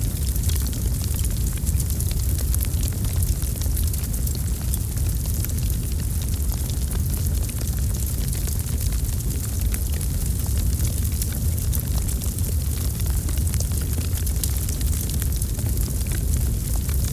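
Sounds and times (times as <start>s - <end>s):
bonfire: 0.0s - 17.1s.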